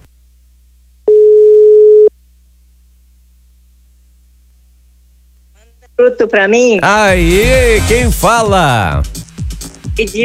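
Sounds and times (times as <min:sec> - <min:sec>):
telephone line ringing tone during a radio call-in: 0:01.1 - 0:02.1
speech: 0:06.0 - 0:09.2, 0:10.0 - 0:10.2.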